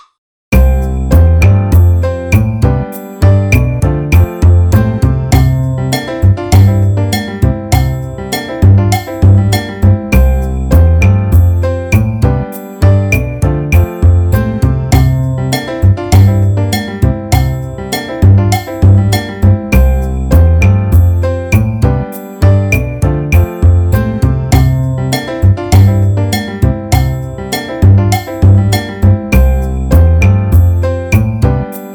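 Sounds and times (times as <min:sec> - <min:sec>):
drum kit solo: 0:00.6 - 0:12.7, 0:13.4 - 0:31.8.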